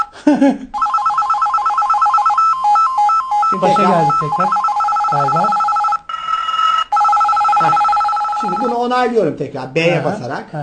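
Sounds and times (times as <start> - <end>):
speech: 0.3 - 0.8, 3.5 - 5.6, 7.6 - 10.6
old-style telephone bell ringing: 0.8 - 9.0.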